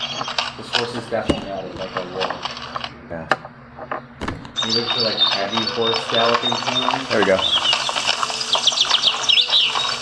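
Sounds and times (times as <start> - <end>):
speech: 0.8 - 3.5, 4.7 - 7.8
birds chirping in a forest: 1.1 - 2.2, 3.5 - 10.0.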